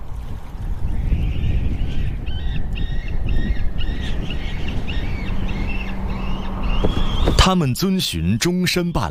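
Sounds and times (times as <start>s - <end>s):
water: 0.0s - 9.1s
wind: 0.0s - 9.1s
white-tailed eagle yelping calls: 2.0s - 7.4s
speech: 7.5s - 9.1s.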